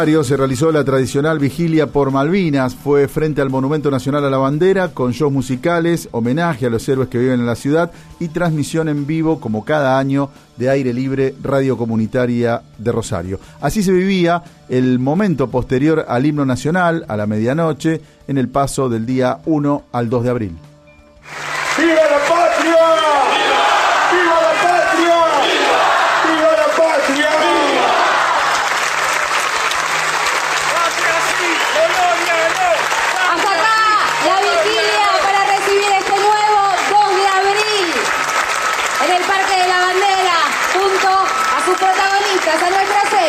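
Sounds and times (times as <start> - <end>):
speech: 0.0 - 20.7
large crowd clapping: 21.2 - 43.2
crowd voices shouting and cheering: 21.4 - 28.7, 30.7 - 38.0, 39.0 - 43.2.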